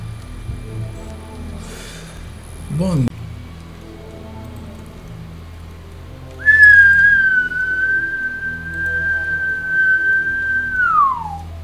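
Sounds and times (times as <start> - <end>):
low rumble: 0.0 - 11.6
speech: 2.7 - 3.2
long whistle blast: 6.4 - 11.5.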